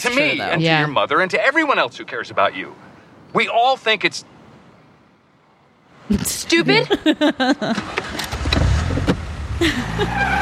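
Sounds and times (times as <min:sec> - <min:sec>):
speech: 0:00.0 - 0:04.4, 0:06.1 - 0:08.1, 0:09.6 - 0:10.3
laughter: 0:06.6 - 0:07.9, 0:09.6 - 0:10.3
car engine pulling away: 0:07.7 - 0:10.3.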